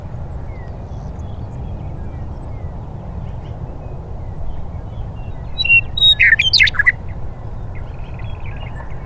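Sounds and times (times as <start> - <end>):
western meadowlark singing: 0.0 - 9.0.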